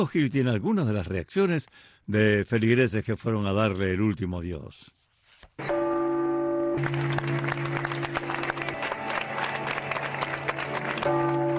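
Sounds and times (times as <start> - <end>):
speech: 0.0 - 5.0, 5.6 - 5.8, 6.8 - 7.6
bells of a cathedral in Havana Cuba ringing: 5.6 - 9.6, 10.7 - 11.5
crowd applauding in farewell to a cardinal: 6.8 - 11.5.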